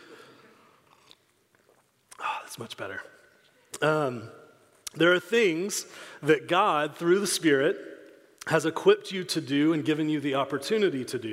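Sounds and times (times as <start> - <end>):
person sipping water: 0.7 - 2.6
speech: 2.6 - 3.2, 3.8 - 7.9, 8.5 - 11.3.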